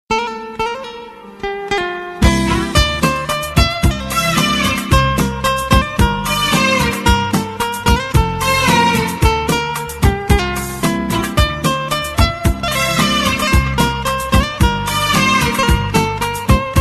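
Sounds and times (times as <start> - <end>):
romantic guitar ringtone: 0.1 - 16.7.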